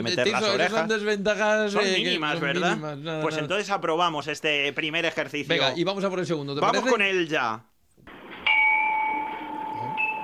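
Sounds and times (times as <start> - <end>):
speech: 0.0 - 7.7
zen bell chime: 8.5 - 10.2.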